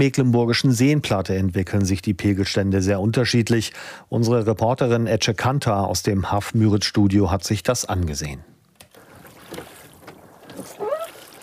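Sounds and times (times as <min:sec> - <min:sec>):
speech: 0:00.0 - 0:08.5
rowboat oar strokes through weedy lake water: 0:08.9 - 0:11.4
brief squeak: 0:10.6 - 0:11.3.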